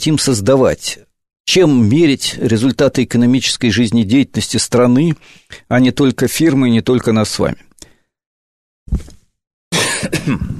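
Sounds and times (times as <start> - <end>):
speech: 0.0 - 7.7, 8.9 - 9.2, 10.0 - 10.5
person coughing: 9.7 - 10.5.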